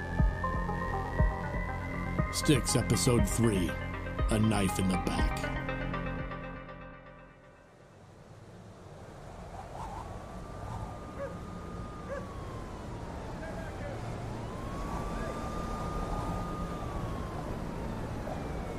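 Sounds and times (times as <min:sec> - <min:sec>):
siren wailing in a city at night: 0:00.0 - 0:06.3, 0:09.7 - 0:18.7
speech: 0:02.3 - 0:05.6
constant low rumble of city traffic: 0:07.6 - 0:18.7.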